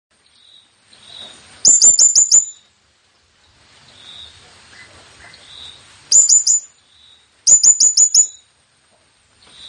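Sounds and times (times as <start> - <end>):
low hiss: 0.1 - 9.6
blue-crowned hanging parrot lure call: 1.6 - 2.7, 5.5 - 6.8, 7.4 - 8.5.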